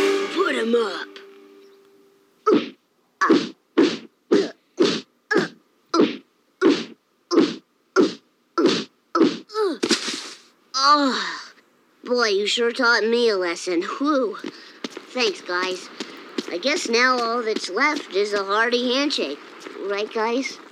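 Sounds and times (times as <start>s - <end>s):
speech: 0.6s - 1.2s, 12.1s - 20.6s
cartoon punches during a beating: 2.4s - 10.5s.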